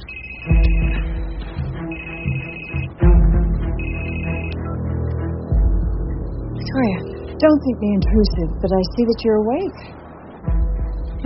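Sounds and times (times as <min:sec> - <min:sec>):
low rumbling musical background: 0:00.0 - 0:11.2
telephone ringing: 0:01.8 - 0:02.9, 0:03.8 - 0:04.6
speech: 0:06.8 - 0:10.0.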